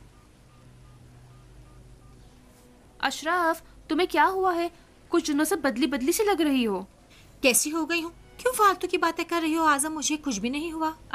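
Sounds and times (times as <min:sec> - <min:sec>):
mobile phone keypad beeps: 0:00.0 - 0:02.3
steady hum: 0:00.0 - 0:11.1
speech: 0:03.0 - 0:11.1.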